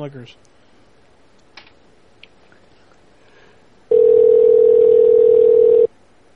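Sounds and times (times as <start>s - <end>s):
loud steady telephone dial tone: 3.9s - 5.9s.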